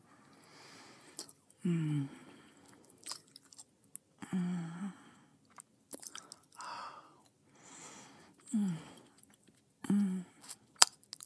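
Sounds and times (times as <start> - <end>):
person chewing food in soft low munching bursts: 0.2 - 4.1, 5.4 - 7.4, 8.2 - 11.2.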